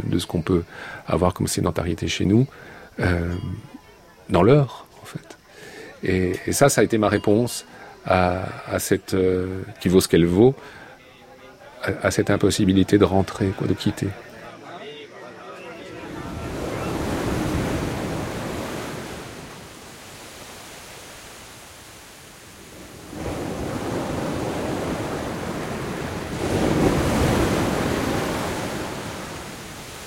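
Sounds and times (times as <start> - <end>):
speech: 0.0 - 5.4, 6.0 - 10.8, 11.8 - 14.3
ocean waves breaking on the shore: 15.8 - 30.0.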